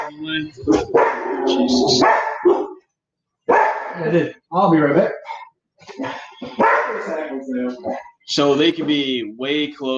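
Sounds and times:
speech: 0.1 - 2.6, 4.0 - 9.9
dog barking: 0.7 - 2.9, 3.5 - 4.0, 6.6 - 7.1.

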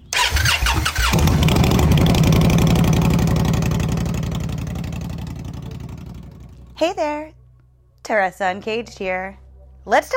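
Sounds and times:
Indian Scout motorcycle engine cranking and starting: 0.0 - 6.9
Indian Scout motorcycle engine idling: 1.0 - 6.8
speech: 6.8 - 7.4, 8.0 - 10.1.

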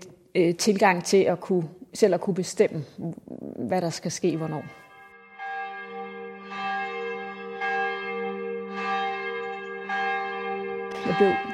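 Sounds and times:
speech: 0.4 - 4.8, 11.1 - 11.5
church bells pealing: 4.2 - 11.5.

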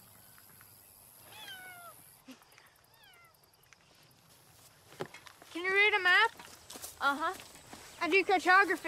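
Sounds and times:
steady hiss: 0.0 - 8.8
cat meowing: 1.3 - 2.0
speech: 7.0 - 8.8.

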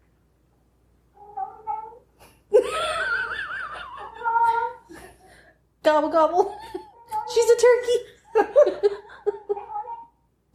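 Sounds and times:
cat meowing with short chirpy calls and a drawn-out meow: 1.2 - 2.0, 3.9 - 4.9, 9.5 - 10.2
speech: 5.9 - 6.8, 7.4 - 9.1.

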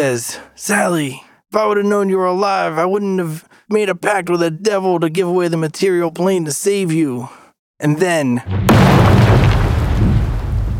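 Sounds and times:
speech: 0.0 - 9.4
loud explosion blowing the roof off a cathedral: 8.5 - 10.7.

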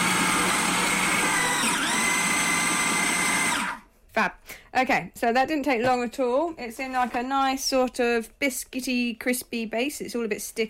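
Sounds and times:
food processor mixing nut flours with coconut oil: 0.0 - 3.8
speech: 4.2 - 10.6.

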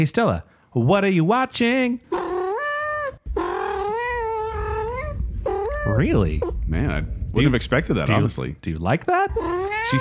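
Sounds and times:
speech: 0.0 - 2.2, 5.9 - 9.9
cat meowing and yowling: 2.1 - 6.6, 9.3 - 9.9.

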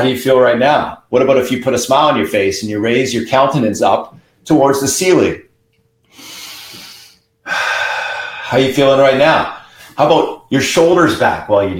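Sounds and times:
speech: 0.0 - 5.5, 8.5 - 11.7
deep breathing: 6.1 - 8.8, 9.5 - 10.0.

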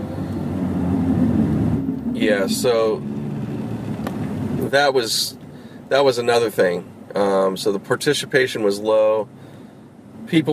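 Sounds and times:
road rumble from inside a moving car: 0.0 - 10.5
speech: 2.2 - 3.1, 4.6 - 9.4, 10.3 - 10.5.

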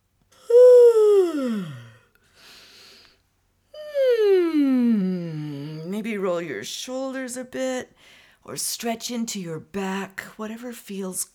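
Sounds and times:
person yawning as a warm-up before singing: 0.4 - 2.1, 3.8 - 5.9
soft breathy inhale: 1.6 - 3.2
speech: 6.0 - 11.3.

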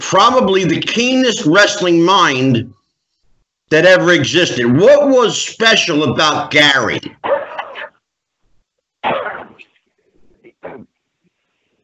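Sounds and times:
speech: 0.1 - 2.7, 3.7 - 7.3
harsh raspy coughs: 7.1 - 8.0, 9.0 - 9.8, 10.4 - 11.0
faint throaty sounds: 9.0 - 11.8.

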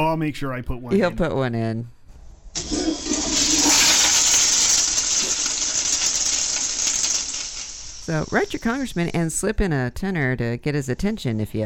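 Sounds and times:
speech: 0.1 - 2.0, 8.1 - 11.6
toilet flushing: 2.6 - 9.0.

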